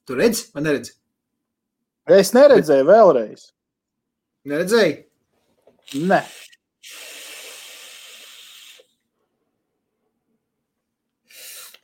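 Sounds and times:
speech: 0.1s - 1.0s, 2.1s - 3.6s, 4.4s - 5.1s, 5.9s - 7.1s
vapor exhaled from an e-cigarette: 5.8s - 9.1s, 11.2s - 11.8s.

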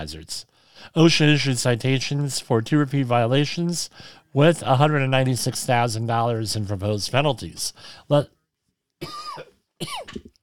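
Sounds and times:
speech: 0.0s - 8.4s, 9.0s - 10.4s
person coughing: 9.0s - 10.4s.

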